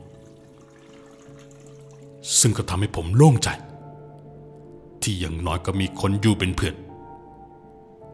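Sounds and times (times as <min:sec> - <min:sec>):
toilet flushing in a restroom stall: 0:00.0 - 0:02.6
speech: 0:02.2 - 0:03.7, 0:05.0 - 0:06.8.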